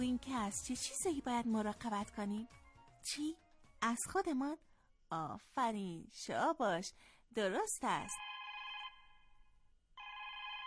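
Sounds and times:
speech: 0.0 - 8.3
telephone ringing with a bright electronic trill: 8.2 - 9.2, 10.0 - 10.6.

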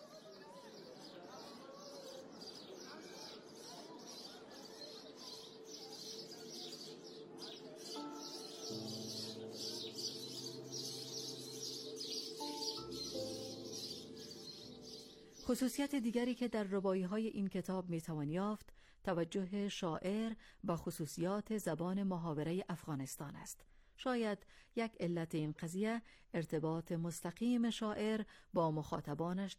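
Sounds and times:
chorus of sparrows chirping in the morning: 0.1 - 16.6
speech: 15.5 - 29.5.

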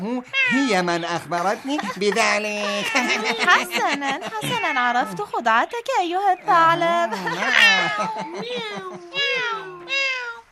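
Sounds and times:
speech: 0.0 - 9.6
cat meowing: 0.3 - 1.2, 2.5 - 5.4, 7.4 - 10.5
laughter: 0.5 - 5.4, 6.4 - 9.9.

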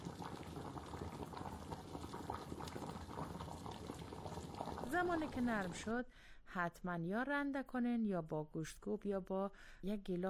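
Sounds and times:
pot of lentils and potatoes boiling in water: 0.0 - 6.0
speech: 4.9 - 10.2.

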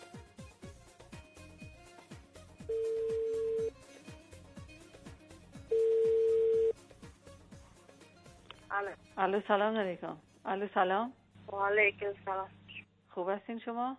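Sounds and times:
rhythmic music: 0.0 - 10.2
ringback tone of an outgoing telephone call: 2.7 - 3.7, 5.7 - 6.7
speech: 8.8 - 12.6, 13.2 - 13.9.

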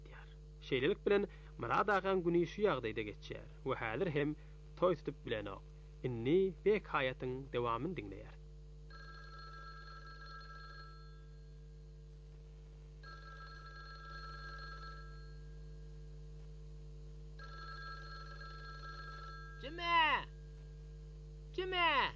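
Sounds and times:
steady low hum: 0.0 - 22.1
speech: 0.7 - 8.4, 21.6 - 22.1
telephone ringing with bright trilling ring: 8.9 - 11.6, 13.0 - 15.8, 17.4 - 20.6.

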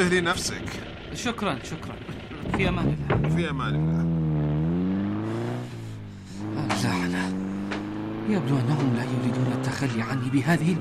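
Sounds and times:
speech: 0.0 - 4.2, 6.7 - 7.4, 8.3 - 10.8
car engine revving and accelerating: 0.0 - 10.8.

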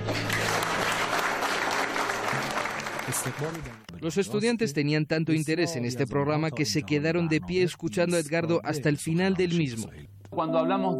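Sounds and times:
audience applause welcoming a guest: 0.0 - 3.9
speech: 3.1 - 10.9.

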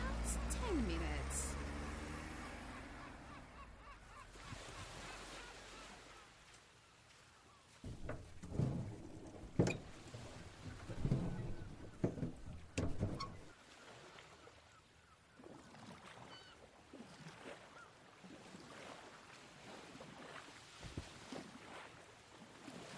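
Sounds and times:
boat engine rumbling as boat sets off from Bandar Turkaman Pier: 0.0 - 5.3, 7.8 - 13.5
clunks and splashy knocks as the boat gets underway: 7.8 - 13.5.

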